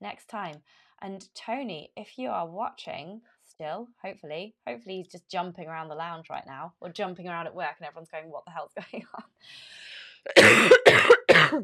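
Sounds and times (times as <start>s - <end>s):
speech: 0.0s - 11.6s
harsh coughs: 10.3s - 11.6s.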